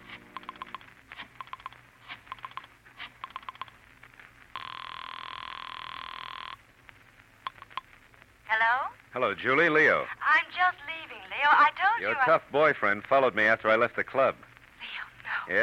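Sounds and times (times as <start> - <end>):
private telephone bell ringing at a club: 4.6 - 6.6
speech: 8.6 - 14.5, 15.5 - 15.6.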